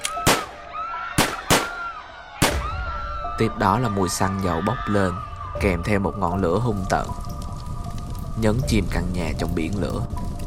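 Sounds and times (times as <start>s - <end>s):
gunshots during an attack on a house: 0.0s - 0.6s, 1.2s - 2.8s
screaming: 0.0s - 6.3s
speech: 3.4s - 7.3s, 8.4s - 10.3s.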